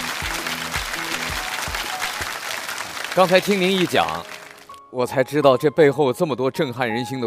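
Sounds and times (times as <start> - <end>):
audience applause: 0.0 - 4.8
speech: 3.2 - 4.3, 4.9 - 7.2.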